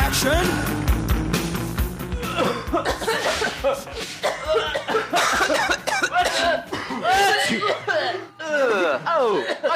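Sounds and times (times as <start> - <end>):
speech: 0.2 - 0.8, 7.5 - 9.7
several people coughing as if they have colds: 2.0 - 9.7
people chuckling and snickering: 2.1 - 9.7.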